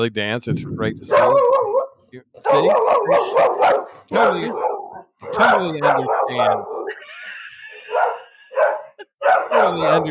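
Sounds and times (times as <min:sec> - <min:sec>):
speech: 0:00.0 - 0:07.2, 0:09.3 - 0:10.0
dog barking: 0:01.1 - 0:06.9, 0:07.9 - 0:10.0
laughter: 0:06.7 - 0:09.2.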